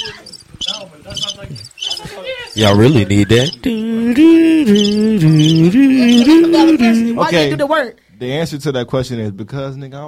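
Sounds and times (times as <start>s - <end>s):
crickets chirping: 0.0s - 7.2s
speech: 1.4s - 10.0s.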